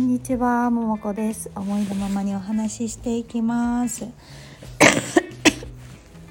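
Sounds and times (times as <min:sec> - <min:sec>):
speech: 0:00.2 - 0:04.5
person coughing: 0:04.8 - 0:05.8.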